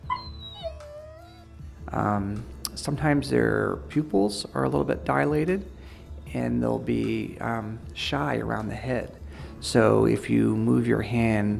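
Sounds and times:
dog whimpering as a veterinary patient: 0:00.0 - 0:01.6
speech: 0:01.9 - 0:05.7, 0:06.3 - 0:11.5
soft breathy sounds: 0:05.8 - 0:06.2, 0:09.2 - 0:09.6.

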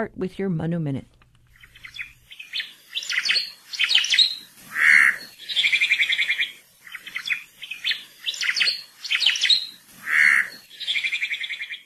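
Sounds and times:
speech: 0:00.0 - 0:01.2
oma'o Hawaiian thrush calling loudly on Hawaii Island: 0:03.0 - 0:11.7.

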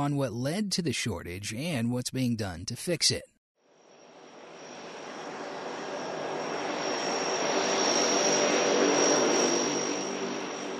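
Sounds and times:
speech: 0:00.0 - 0:03.3
air tanker plane engines roaring while taxiing on airport tarmac: 0:03.8 - 0:10.7.

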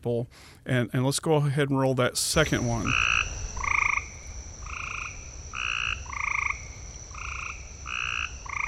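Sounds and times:
speech: 0:00.0 - 0:03.3
frog croaking: 0:02.4 - 0:08.6.

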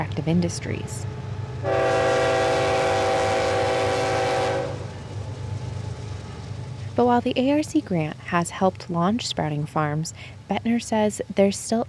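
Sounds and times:
speech: 0:00.0 - 0:01.8, 0:07.0 - 0:11.8
coal train rumbling past alongside a farm: 0:00.0 - 0:11.1
train horn blaring: 0:01.6 - 0:05.0.

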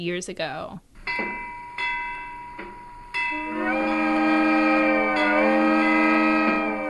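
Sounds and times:
speech: 0:00.0 - 0:01.4
heritage train chugging: 0:03.3 - 0:06.8.

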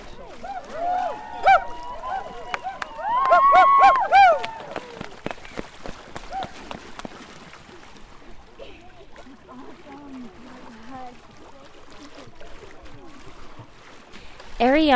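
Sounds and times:
canoe paddles splashing through water: 0:00.0 - 0:14.9
crowd cheering and shouting excitedly: 0:00.3 - 0:06.8.

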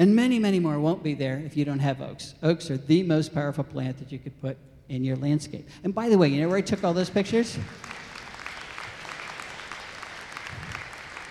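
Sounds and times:
speech: 0:00.0 - 0:08.0
audience applause: 0:07.7 - 0:11.2.

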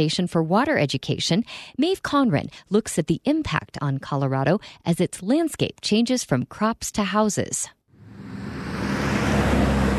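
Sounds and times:
speech: 0:00.0 - 0:07.8
highway traffic on an interstate north of Denver: 0:07.9 - 0:09.9.

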